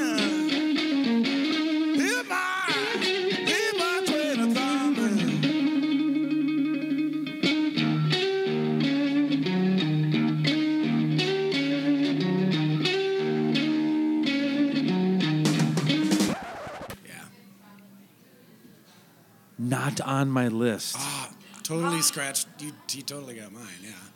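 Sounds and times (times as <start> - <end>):
distorted electric blues guitar riff with bending notes: 0.0 - 17.0
speech: 20.0 - 21.1, 21.7 - 24.1.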